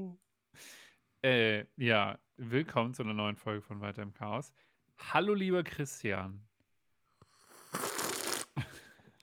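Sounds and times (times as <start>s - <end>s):
speech: 1.2s - 6.5s
slurping tea: 7.2s - 8.6s.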